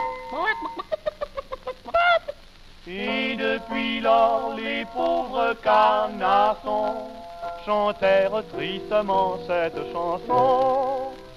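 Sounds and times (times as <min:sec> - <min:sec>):
chicken squawking: 0:00.3 - 0:02.4
speech: 0:02.9 - 0:11.0.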